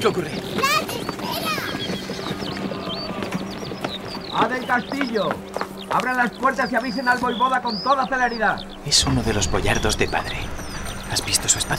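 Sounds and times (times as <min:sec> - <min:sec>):
speech: 0:00.0 - 0:00.7, 0:04.4 - 0:11.7
many horses' hooves clattering: 0:00.0 - 0:11.7
horses whinnying: 0:01.4 - 0:04.9.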